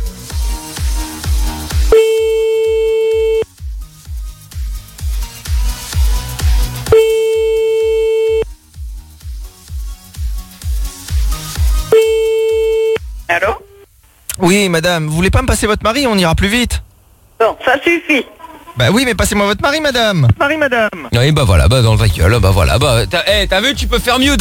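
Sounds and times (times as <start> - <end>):
loud rhythmic music bed: 0.0 - 13.7, 18.7 - 24.4
French telephone ringback tone on a call back: 2.0 - 3.4, 7.0 - 8.4, 11.9 - 13.0
speech: 14.5 - 24.4.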